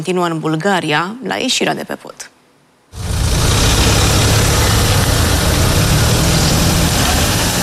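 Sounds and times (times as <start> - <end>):
speech: 0.0 - 2.3
car engines idling in a queue at a toll station: 3.0 - 7.6.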